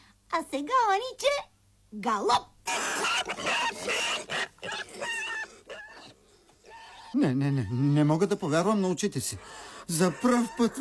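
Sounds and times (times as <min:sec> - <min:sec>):
speech: 0:00.4 - 0:04.9, 0:07.1 - 0:10.8
trained pig grunting and squealing: 0:02.6 - 0:10.8.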